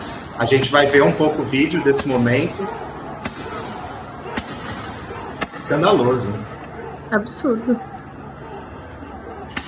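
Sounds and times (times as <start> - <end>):
crowd noise: 0.0 - 9.6
speech: 0.4 - 2.9, 5.7 - 6.5, 7.1 - 7.9
rubber bullet gunshots during police crackdown: 3.1 - 5.9, 9.5 - 9.6.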